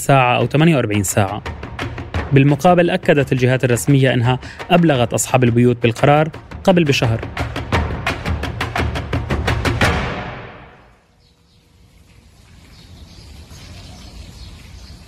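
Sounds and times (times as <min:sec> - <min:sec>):
speech: 0:00.0 - 0:01.7, 0:02.3 - 0:07.6
soft outdoor air in an evacuated neighborhood: 0:00.0 - 0:15.0
loud rhythmic thumping: 0:00.1 - 0:10.9
faint bird calls: 0:10.9 - 0:15.0.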